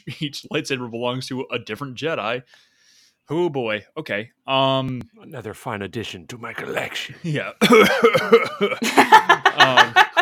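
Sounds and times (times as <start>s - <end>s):
speech: 0.0s - 2.7s, 3.3s - 10.1s
person coughing maniacally into a microphone: 7.6s - 8.8s
laughter: 7.6s - 10.1s.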